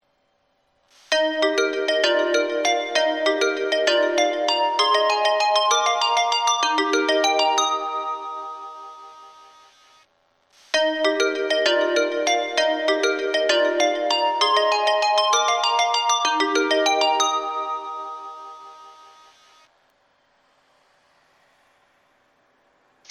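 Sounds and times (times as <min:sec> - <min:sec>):
melody: 0:01.1 - 0:09.5, 0:10.8 - 0:19.4.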